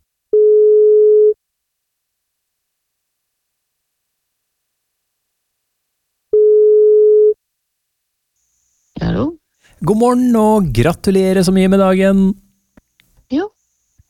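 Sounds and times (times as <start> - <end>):
long steady telephone ringback tones while placing a call: 0.4 - 1.4, 6.4 - 7.4
speech: 9.8 - 12.4, 13.3 - 13.6.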